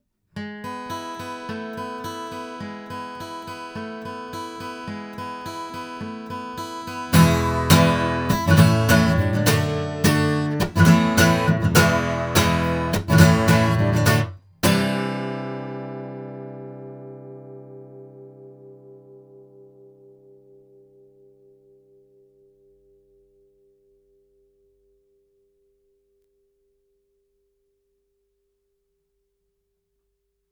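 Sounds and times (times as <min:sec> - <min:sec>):
guitar recorded with an AEA R84: 0:00.3 - 0:24.2.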